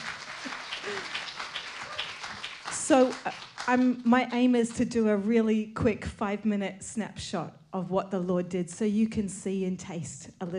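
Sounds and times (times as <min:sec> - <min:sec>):
audience applause at a church gathering: 0:00.0 - 0:04.0
speech: 0:02.9 - 0:10.5.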